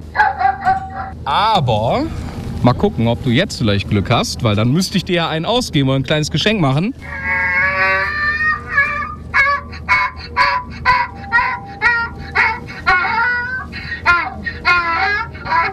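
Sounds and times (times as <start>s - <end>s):
donkey braying: 0.0s - 1.2s, 7.0s - 15.7s
faint hum: 0.0s - 15.7s
speech: 1.3s - 7.2s.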